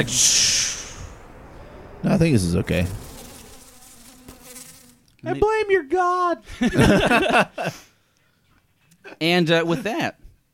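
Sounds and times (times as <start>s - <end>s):
speech: 0.0s - 0.6s, 2.0s - 3.0s, 5.2s - 7.9s, 9.0s - 10.2s
swarm of mosquitoes buzzing around a room: 0.9s - 5.3s
laughter: 6.4s - 7.9s.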